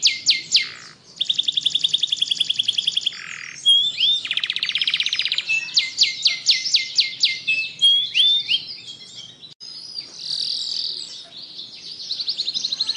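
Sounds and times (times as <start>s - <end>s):
Atlantic canary singing continuously in ngebren style: 0.0s - 12.9s.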